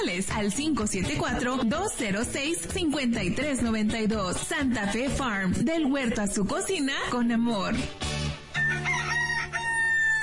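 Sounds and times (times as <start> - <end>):
speech: 0.2 - 8.0
rooster crowing: 8.5 - 10.2.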